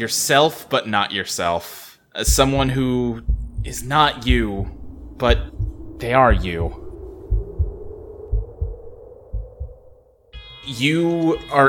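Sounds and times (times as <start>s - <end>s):
speech: 0.0s - 6.8s, 10.7s - 11.6s
heartbeat sound effect with deep lub-dub thumps: 2.2s - 10.0s
low droning hum: 2.2s - 10.3s.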